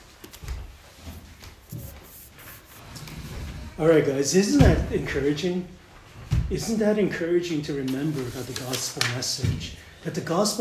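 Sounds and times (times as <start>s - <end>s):
chair being pulled up scraping across floor: 1.2s - 3.8s
speech: 3.8s - 5.8s, 6.5s - 10.6s.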